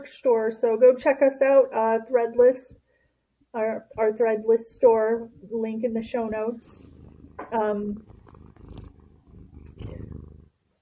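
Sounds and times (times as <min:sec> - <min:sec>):
speech: 0:00.0 - 0:02.8, 0:03.5 - 0:08.1
cat purring: 0:03.8 - 0:10.6
brief higher cat vocal sound: 0:06.7 - 0:10.5.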